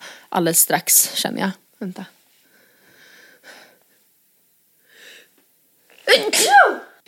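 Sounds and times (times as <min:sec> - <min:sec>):
speech: 0:00.3 - 0:02.2
single loud sneeze: 0:06.0 - 0:07.0.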